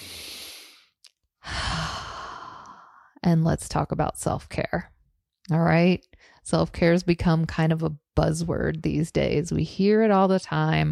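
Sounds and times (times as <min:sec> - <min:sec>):
deep breath during a calming exercise: 0:00.0 - 0:03.2
speech: 0:03.2 - 0:04.9, 0:05.5 - 0:10.8.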